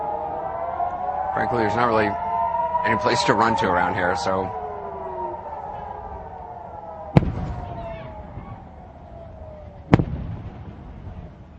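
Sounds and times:
air-raid sirens wailing: 0:00.0 - 0:11.5
speech: 0:01.4 - 0:02.2, 0:02.8 - 0:04.6
distant Iron Dome missile interception explosions over Ashkelon: 0:07.1 - 0:08.9, 0:09.5 - 0:11.5.

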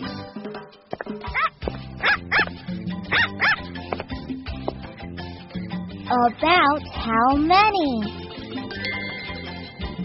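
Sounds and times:
soft steady music: 0:00.0 - 0:10.0
puppies yipping and barking: 0:01.3 - 0:03.6
speech: 0:06.1 - 0:08.2.

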